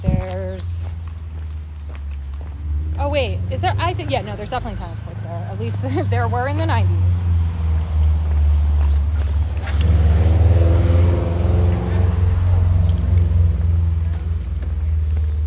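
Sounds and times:
car engine accelerating along a road: 0:02.0 - 0:15.4
speech: 0:03.2 - 0:07.1.

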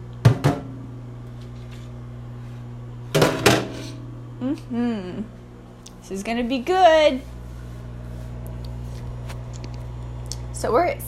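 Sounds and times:
appliance hum: 0:00.0 - 0:11.0
dishes clattering into a sink: 0:03.2 - 0:04.0
person murmuring: 0:04.4 - 0:05.3
speech: 0:04.4 - 0:05.4, 0:06.1 - 0:07.3, 0:10.6 - 0:11.0.

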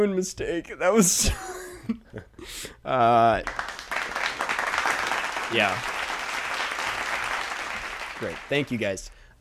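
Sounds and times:
speech: 0:00.0 - 0:03.8, 0:05.5 - 0:06.0, 0:08.2 - 0:09.2
canned crowd applause from a soundboard: 0:03.4 - 0:09.0.

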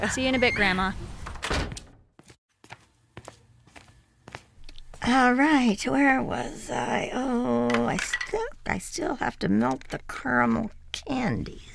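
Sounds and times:
speech: 0:00.0 - 0:01.0, 0:05.1 - 0:11.7
front door shutting: 0:00.2 - 0:02.1
footsteps at an even walking pace: 0:02.2 - 0:05.2.

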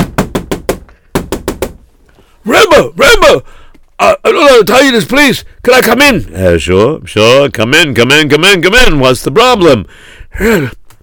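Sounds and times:
knocking on a wooden door: 0:00.0 - 0:01.8
speech: 0:02.4 - 0:10.8.

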